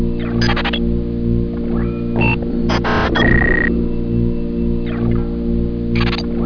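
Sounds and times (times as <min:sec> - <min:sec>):
computer loop: 0:00.2 - 0:00.8, 0:01.7 - 0:05.3, 0:06.0 - 0:06.2.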